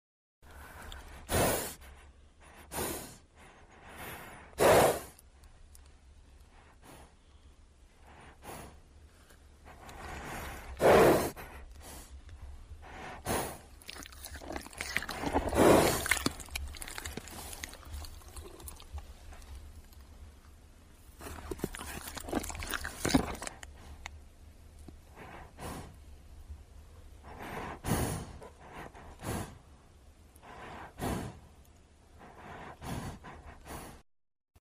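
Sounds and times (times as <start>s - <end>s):
animal breathing and licking: 0.5s - 7.4s, 8.0s - 20.4s, 21.0s - 24.2s, 27.2s - 29.7s, 32.2s - 34.0s.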